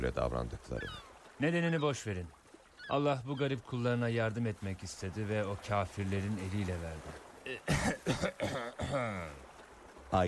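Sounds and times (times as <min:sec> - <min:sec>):
speech: 0:00.0 - 0:09.4
voiced throat clearing: 0:07.5 - 0:09.4
loud harsh coughing: 0:07.6 - 0:09.3.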